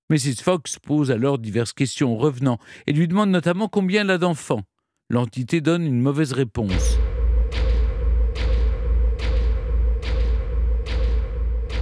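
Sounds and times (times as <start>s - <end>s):
speech: 0.1s - 7.1s
heavy dull knocks: 6.7s - 11.8s
steady low hum: 6.7s - 11.8s.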